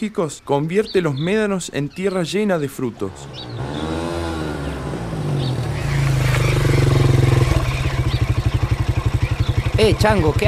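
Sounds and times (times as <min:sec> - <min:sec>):
speech: 0:00.0 - 0:03.9, 0:09.8 - 0:10.4
motorcycle engine revving: 0:03.0 - 0:10.4.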